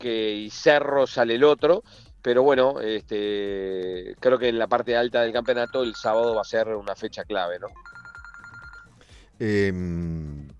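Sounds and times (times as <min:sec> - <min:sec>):
speech: 0:00.0 - 0:08.0, 0:09.4 - 0:10.5
mobile phone ringing: 0:05.4 - 0:06.4, 0:07.7 - 0:09.0.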